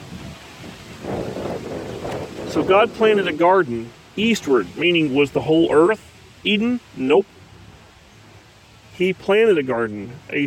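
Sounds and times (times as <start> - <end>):
strong wind buffeting the microphone outdoors: 0.0 - 6.4
trees rustling: 0.0 - 10.4
speech: 2.5 - 7.4, 9.0 - 10.4.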